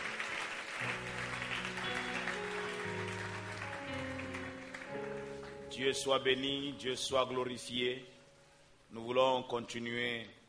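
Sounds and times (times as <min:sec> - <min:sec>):
congregation applauding during a church service: 0:00.0 - 0:06.4
speech: 0:05.8 - 0:08.2, 0:08.9 - 0:10.4.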